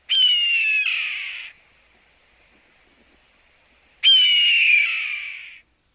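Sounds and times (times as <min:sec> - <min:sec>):
red-tailed hawk screams: 0:00.1 - 0:01.6, 0:04.0 - 0:05.6.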